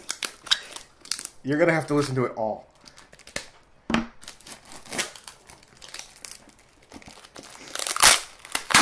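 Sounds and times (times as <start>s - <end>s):
packing tape peeled and torn from a cardboard toner box: 0.0s - 2.1s, 4.2s - 8.8s
speech: 1.4s - 2.7s.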